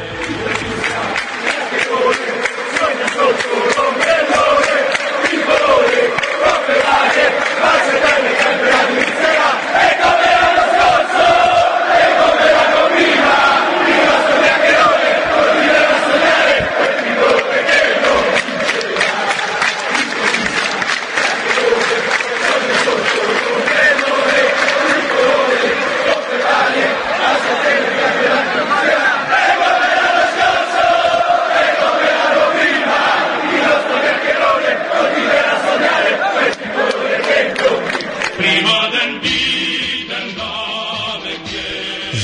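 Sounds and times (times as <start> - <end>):
large stadium crowd of football supporters chanting in unison: 0.0 - 42.2.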